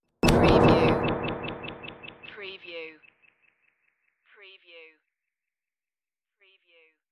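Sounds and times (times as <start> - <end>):
interface flutter hit: 0.2 - 2.4.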